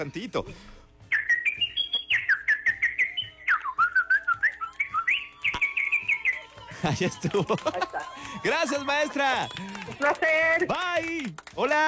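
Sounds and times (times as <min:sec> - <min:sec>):
speech: 0:00.0 - 0:00.8, 0:06.8 - 0:11.8
person whistling a short warbling tune: 0:01.1 - 0:10.7
laughter: 0:01.5 - 0:11.8.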